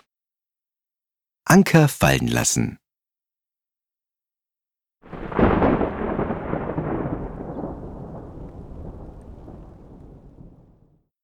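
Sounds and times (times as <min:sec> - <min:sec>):
speech: 0:01.5 - 0:02.8
rolling thunder: 0:05.1 - 0:11.0.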